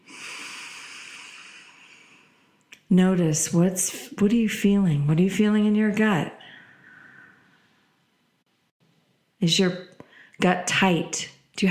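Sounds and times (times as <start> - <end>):
deep breath during a guided breathing exercise: 0.0 - 2.6, 6.4 - 8.0, 10.0 - 10.4
speech: 2.9 - 6.4, 9.4 - 11.7.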